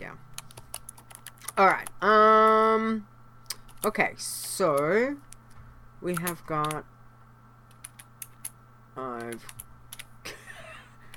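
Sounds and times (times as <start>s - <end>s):
quick uneven computer keyboard tapping: 0.4s - 2.0s, 6.1s - 6.8s, 7.7s - 10.1s
speech: 1.6s - 3.1s, 3.8s - 5.3s, 6.0s - 6.9s, 9.0s - 9.6s.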